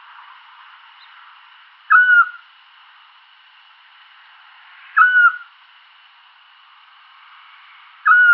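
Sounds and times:
Eurasian scops owl Otus scops whistling: 1.9s - 2.4s, 5.0s - 5.5s, 8.0s - 8.3s.

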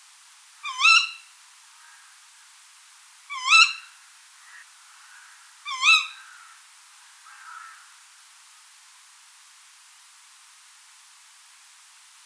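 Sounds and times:
tawny owl shrill kewick calls: 0.6s - 2.0s, 3.3s - 6.5s.

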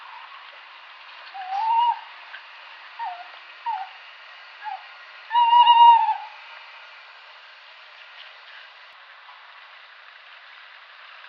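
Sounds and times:
tawny owl Strix aluco hooting: 1.3s - 2.2s, 3.0s - 4.0s, 4.6s - 6.4s.

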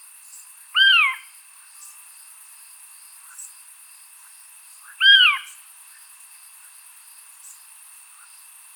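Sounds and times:
faint constant tone: 0.0s - 8.7s
steady high insect trill: 0.0s - 8.7s
Eurasian scops owl Otus scops mellow hoots: 0.8s - 1.3s, 5.0s - 5.6s.

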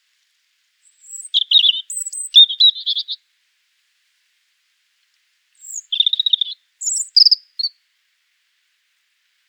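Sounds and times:
European Robin song: 0.8s - 3.2s, 5.6s - 7.8s.

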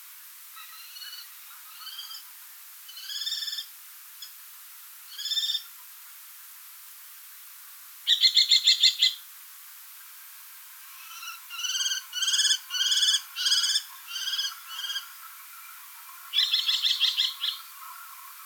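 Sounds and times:
common kestrel Falco tinnunculus shrill calls: 2.9s - 3.7s, 5.1s - 5.6s, 8.1s - 9.2s, 11.1s - 15.0s, 16.3s - 17.7s.

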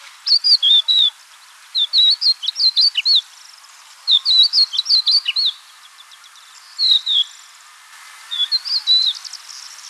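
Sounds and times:
Crested Lark calls: 0.2s - 3.2s, 4.1s - 5.6s, 6.8s - 7.3s, 8.3s - 9.8s.

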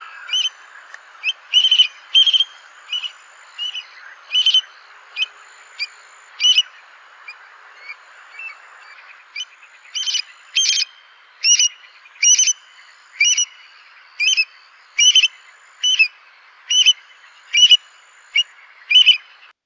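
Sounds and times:
adult stone curlew Burhinus oedicnemus alarm calls: 0.0s - 19.5s.

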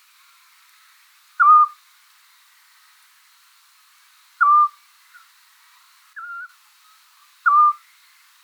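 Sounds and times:
quiet background hiss: 0.0s - 8.4s
Eurasian scops owl Otus scops whistled notes: 4.4s - 4.7s, 7.5s - 7.8s.

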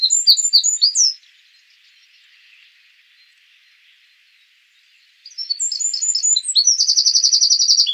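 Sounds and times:
Eurasian wren Troglodytes troglodytes singing: 0.0s - 1.2s, 5.3s - 7.9s.

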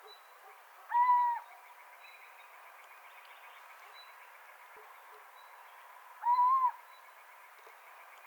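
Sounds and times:
little owl drawn-out even-pitched mewing calls: 0.9s - 1.4s, 6.2s - 6.8s.

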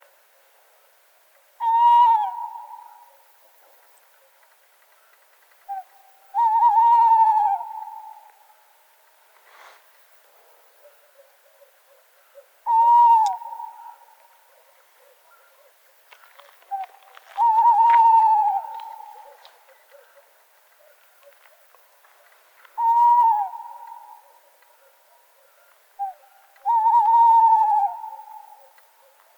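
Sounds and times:
tawny owl Strix aluco calling: 1.6s - 4.3s, 5.7s - 8.7s, 10.8s - 15.8s, 16.4s - 21.8s, 22.6s - 29.3s.

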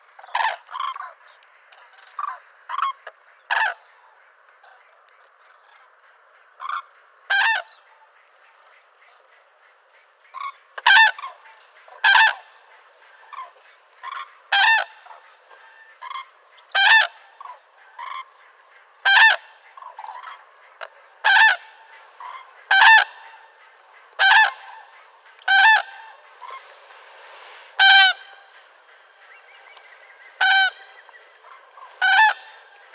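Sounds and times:
calls of distant common cranes Grus grus on the ground: 0.2s - 32.9s
green woodpecker: 19.1s - 32.9s.

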